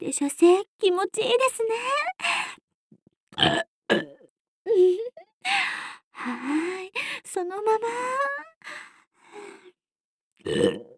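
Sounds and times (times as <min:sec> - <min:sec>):
speech: 0:00.0 - 0:02.4, 0:03.4 - 0:09.6, 0:10.4 - 0:10.9
short throaty burps: 0:03.4 - 0:04.3, 0:10.4 - 0:10.9.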